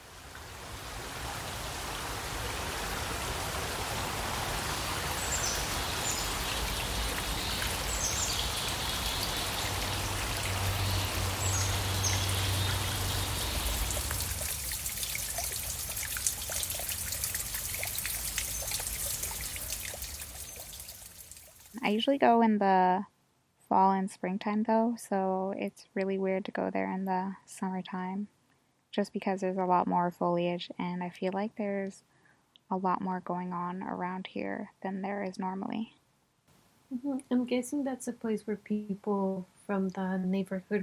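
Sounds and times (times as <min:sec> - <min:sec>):
creek water flowing and babbling: 0:00.0 - 0:22.1
speech: 0:21.9 - 0:23.1, 0:23.7 - 0:32.1, 0:32.7 - 0:36.0, 0:36.9 - 0:40.8.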